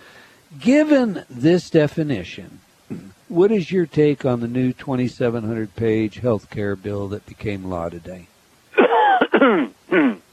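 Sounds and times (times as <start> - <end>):
speech: 0.5 - 8.3, 9.4 - 10.1
person coughing: 2.9 - 3.2, 8.8 - 10.3.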